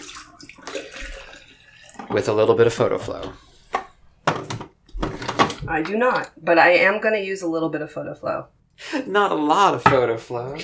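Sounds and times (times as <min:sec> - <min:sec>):
distilled water pouring into a container for a final rinse: 0:00.0 - 0:02.9
speech: 0:02.1 - 0:03.5, 0:05.7 - 0:10.6.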